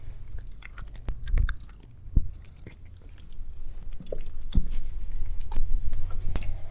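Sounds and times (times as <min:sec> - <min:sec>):
animal smacking and chewing while eating: 0:00.0 - 0:06.6.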